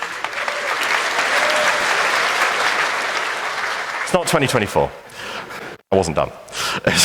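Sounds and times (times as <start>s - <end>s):
crowd applauding after the announcement of a new hexagonal electronic badge: 0.0s - 4.8s
speech: 4.1s - 5.2s, 5.9s - 7.0s.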